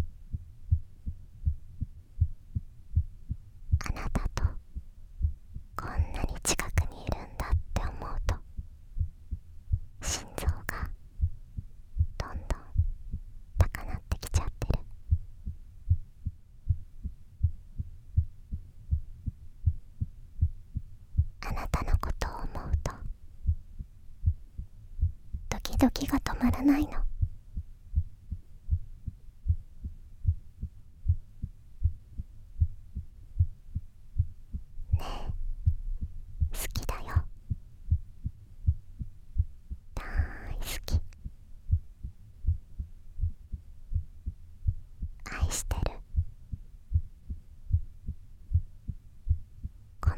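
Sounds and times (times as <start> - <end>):
heartbeat thumping: 0.0 - 6.1, 7.5 - 10.0, 11.2 - 13.7, 14.7 - 21.4, 22.6 - 25.6, 26.4 - 39.9, 41.0 - 45.2, 45.9 - 50.1
soft whispering: 3.8 - 4.6, 5.8 - 8.5, 10.0 - 11.0, 12.1 - 12.9, 13.5 - 15.0, 21.2 - 23.2, 25.4 - 27.3, 34.8 - 37.4, 39.8 - 41.3, 45.0 - 46.3, 50.0 - 50.1
speech: 26.4 - 27.1.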